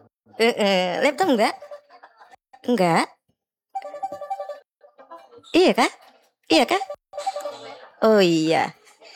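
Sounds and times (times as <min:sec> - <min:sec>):
speech: 0:00.4 - 0:01.7, 0:02.6 - 0:03.2, 0:05.4 - 0:07.3, 0:08.0 - 0:08.8
laughter: 0:01.6 - 0:02.4
telephone ringtone at a radio station: 0:03.8 - 0:04.7, 0:06.9 - 0:08.1.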